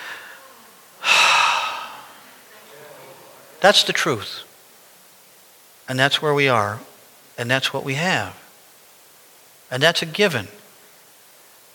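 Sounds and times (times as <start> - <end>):
deep breath: 0.0 - 2.2
speech: 3.6 - 4.5, 5.9 - 8.4, 9.7 - 10.6.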